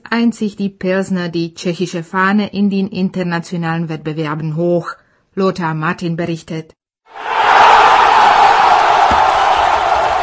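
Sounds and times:
speech: 0.1s - 7.3s
huge stadium crowd cheering after a goal: 7.1s - 10.2s.

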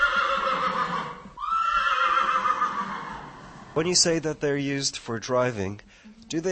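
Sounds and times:
Kladruber horse whinnying in a stable for young horses in training: 0.0s - 3.8s
speech: 3.8s - 6.5s.

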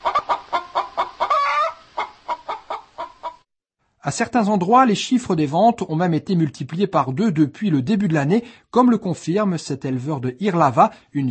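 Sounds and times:
hens clucking in a henhouse: 0.0s - 3.4s
speech: 4.0s - 11.3s.

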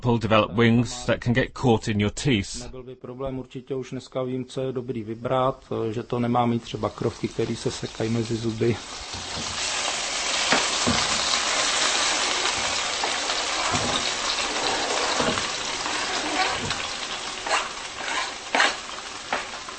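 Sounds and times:
speech: 0.0s - 9.7s
food sizzling and frying in a pan: 5.6s - 19.7s.

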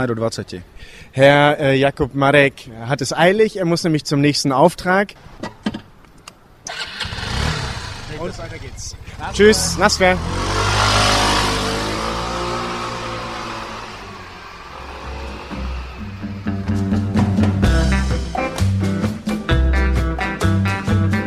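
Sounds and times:
speech: 0.0s - 5.6s, 8.2s - 10.7s
motorcycle taxi engine in Prague revving and pulling away: 6.7s - 18.3s
rhythmic piece of music: 15.5s - 21.2s.

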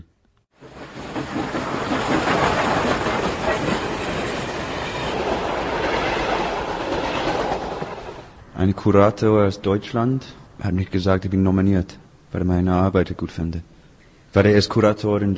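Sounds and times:
train wheels rattling on track: 0.6s - 8.4s
train passing on railway line beside Prague-Smíchov station: 0.6s - 10.6s
speech: 1.3s - 1.8s, 8.6s - 13.7s, 14.3s - 15.3s.

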